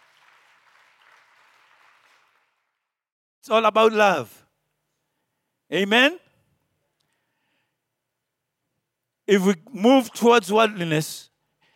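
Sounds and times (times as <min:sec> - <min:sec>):
church audience clapping in praise: 0:00.0 - 0:03.1
speech: 0:03.4 - 0:04.4, 0:05.7 - 0:06.2, 0:09.3 - 0:11.3.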